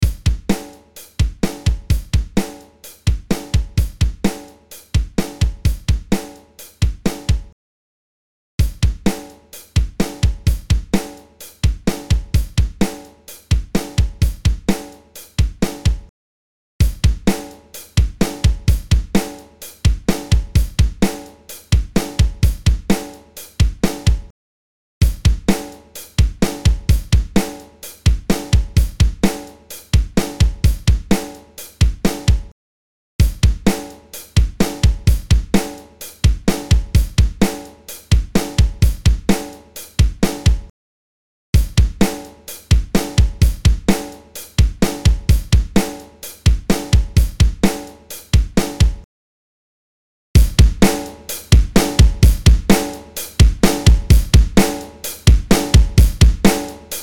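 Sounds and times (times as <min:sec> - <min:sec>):
drums dry mix: 0:00.0 - 0:07.6, 0:08.6 - 0:16.1, 0:16.8 - 0:24.3, 0:25.0 - 0:32.5, 0:33.2 - 0:40.7, 0:41.6 - 0:49.1, 0:50.4 - 0:57.0.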